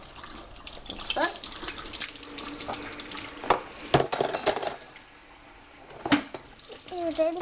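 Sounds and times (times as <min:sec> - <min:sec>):
running tap water splashing as plates are rinsed in a sink: 0:00.0 - 0:04.2, 0:04.8 - 0:07.4
dishware knocking together: 0:04.0 - 0:04.8.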